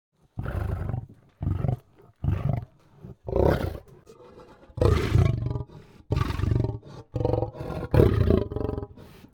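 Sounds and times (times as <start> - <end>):
lion growling: 0.4 - 9.3.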